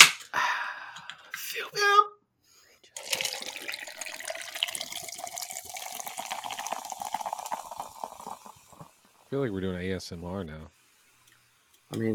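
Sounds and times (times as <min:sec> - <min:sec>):
speech: 0:01.5 - 0:02.1, 0:09.3 - 0:10.8, 0:11.9 - 0:12.1
LaCroix sparkling water pouring over ice: 0:03.0 - 0:09.4.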